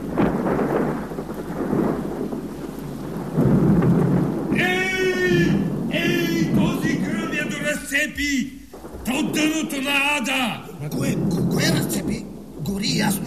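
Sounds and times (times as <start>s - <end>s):
loud crash of thunder in a storm: 0.0s - 13.2s
rain in a storm: 0.0s - 13.2s
high voice crying out: 4.6s - 6.6s.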